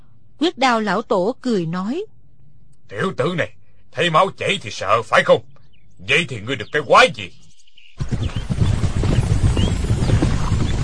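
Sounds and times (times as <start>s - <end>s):
speech: 0.4s - 2.1s, 2.9s - 7.4s
hooves of galloping horses with riders in pursuit: 6.1s - 7.3s, 8.0s - 10.8s.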